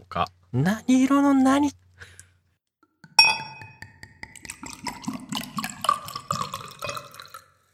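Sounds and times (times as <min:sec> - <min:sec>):
speech: 0:00.1 - 0:02.1
bright clink of a bottle and glass: 0:03.2 - 0:03.9
red wine glugging from a bottle into a glass: 0:03.2 - 0:07.7.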